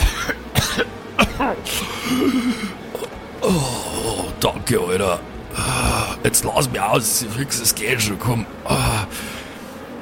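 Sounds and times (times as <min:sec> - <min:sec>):
harsh hacking cough coughing up blood: 0:00.0 - 0:03.2
speech: 0:01.4 - 0:03.8, 0:04.4 - 0:09.4
person groaning: 0:01.6 - 0:04.4, 0:08.6 - 0:09.2.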